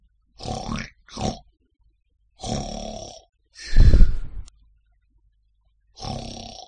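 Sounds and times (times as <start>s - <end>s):
person snoring loudly in sleep: 2.4s - 4.5s, 6.0s - 6.6s.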